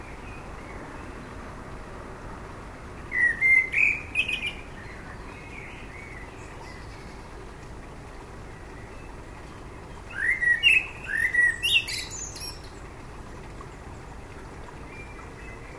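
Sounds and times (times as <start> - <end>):
faint background hiss: 0.0 - 15.7
common blackbird Turdus merula singing fluty whistled phrases: 3.1 - 7.2, 10.1 - 12.8.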